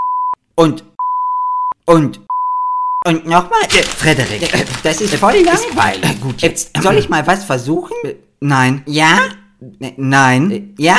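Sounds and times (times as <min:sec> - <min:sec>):
speech: 0:00.6 - 0:00.9, 0:01.9 - 0:02.2, 0:03.0 - 0:10.9
high-pitched censor beep tone covering a spoken word: 0:01.0 - 0:03.0.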